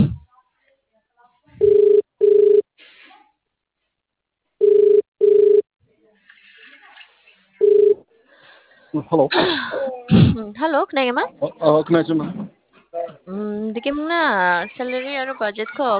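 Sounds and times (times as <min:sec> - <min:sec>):
faint noise: 0:00.0 - 0:15.9
telephone ringing in short double bursts: 0:01.6 - 0:02.6, 0:04.6 - 0:05.6, 0:07.6 - 0:08.0
speech: 0:09.0 - 0:12.5, 0:13.3 - 0:15.9.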